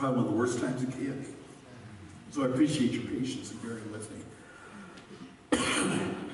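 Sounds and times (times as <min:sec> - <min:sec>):
speech: 0:00.0 - 0:01.5, 0:02.3 - 0:04.4, 0:05.7 - 0:06.2
person coughing into microphone: 0:05.5 - 0:06.3.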